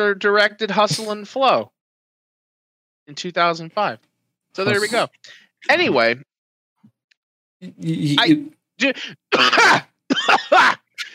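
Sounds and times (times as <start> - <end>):
speech: 0.0 - 1.8, 3.1 - 6.3, 7.6 - 10.8
person coughing: 0.9 - 1.2, 9.3 - 10.8
person clearing throat: 9.3 - 10.3.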